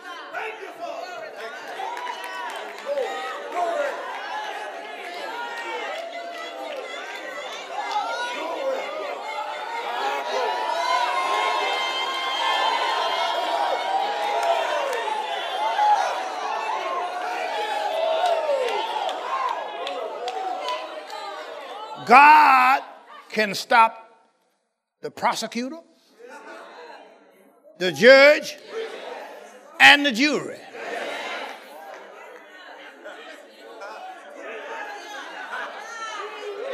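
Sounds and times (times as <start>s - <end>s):
audience shouting and cheering: 0.0s - 23.9s, 27.8s - 36.7s
speech: 22.1s - 22.4s, 23.4s - 24.0s, 25.0s - 25.8s, 27.8s - 28.6s, 29.9s - 30.7s.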